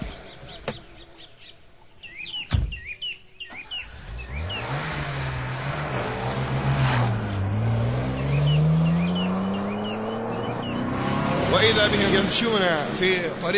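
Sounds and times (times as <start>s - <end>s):
birds chirping: 0.0s - 13.5s
brief thump: 2.5s - 2.9s
luxury car engine revving and accelerating: 3.5s - 13.5s
speech: 11.7s - 13.5s.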